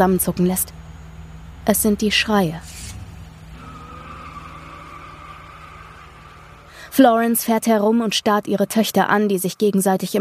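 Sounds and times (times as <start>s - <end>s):
speech: 0.0s - 0.8s, 1.6s - 2.8s, 7.0s - 10.1s
car engine roaring on a street as the car pulls away: 0.0s - 8.5s
car tires screeching: 0.7s - 8.4s.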